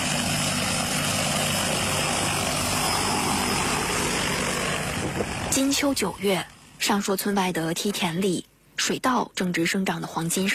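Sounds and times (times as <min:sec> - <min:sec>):
crop-spraying drone propellers whirring: 0:00.0 - 0:06.9
speech: 0:05.6 - 0:10.5.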